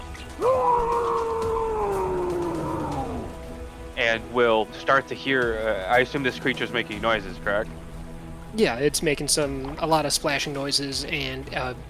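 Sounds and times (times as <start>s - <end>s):
man screaming: 0.4s - 3.4s
speech: 4.1s - 7.8s, 8.5s - 11.8s.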